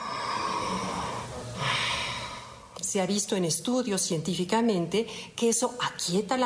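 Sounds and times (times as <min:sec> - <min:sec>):
slow even inhale and exhale: 0:00.0 - 0:02.8
speech: 0:02.9 - 0:06.4.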